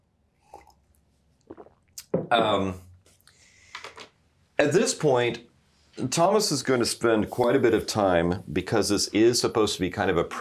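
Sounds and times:
gulp and swallow: 0.4 - 0.8, 1.4 - 2.2
person sipping water with slurps and mouth clicks: 0.4 - 2.1
speech: 2.2 - 2.9, 4.6 - 10.3.

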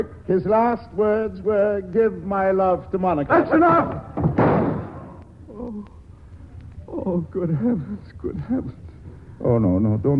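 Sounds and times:
speech: 0.0 - 4.3, 5.6 - 6.0, 6.9 - 8.8, 9.4 - 10.1
gunshot hitting a table: 4.2 - 5.2.

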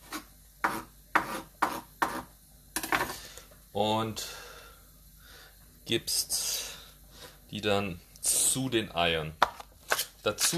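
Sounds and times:
knife chopping fresh parsley: 0.0 - 2.3
speech: 3.8 - 4.4, 5.9 - 6.7, 7.5 - 9.4, 10.2 - 10.5.

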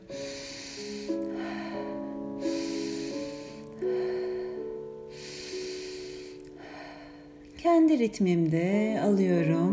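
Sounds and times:
rapid nasal breathing: 0.0 - 7.4
soft sustained musical drone: 0.0 - 9.7
speech: 7.6 - 9.7.

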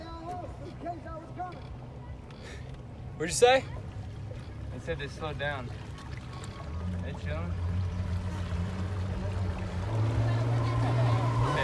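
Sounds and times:
rushing water: 2.8 - 11.6
speech: 3.2 - 3.8, 4.8 - 5.8, 7.1 - 7.6
engine revving loudly: 6.7 - 11.6.

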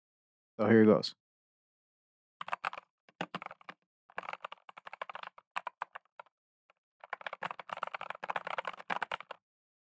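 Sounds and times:
speech: 0.6 - 1.2
computer keyboard typing: 2.4 - 6.3, 7.0 - 9.4.

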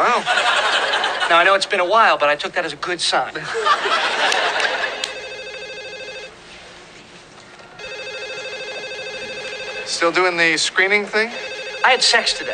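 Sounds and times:
laughter: 0.0 - 1.3, 3.4 - 5.1
room noise: 0.0 - 12.5
speech: 1.3 - 4.8, 9.9 - 12.5
telephone ringing with an electronic trill: 4.1 - 6.4, 7.8 - 12.5.

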